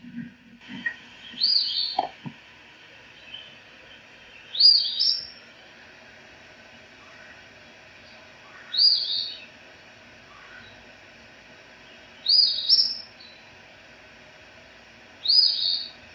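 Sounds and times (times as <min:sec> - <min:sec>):
Eastern Phoebe calling: 0:01.3 - 0:02.2, 0:02.9 - 0:05.6, 0:06.8 - 0:09.5, 0:10.2 - 0:10.9, 0:11.8 - 0:13.4, 0:15.2 - 0:16.0.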